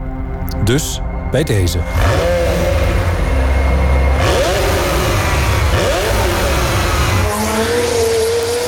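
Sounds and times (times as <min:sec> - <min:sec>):
speech: 0:00.7 - 0:02.4
race car engines revving and roaring as the cars accelerate and shift: 0:01.8 - 0:08.6.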